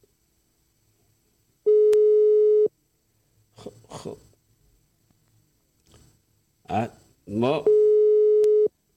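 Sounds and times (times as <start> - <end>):
telephone busy signal after a dropped call: 1.7 - 2.7, 7.6 - 8.7
speech: 6.7 - 7.8.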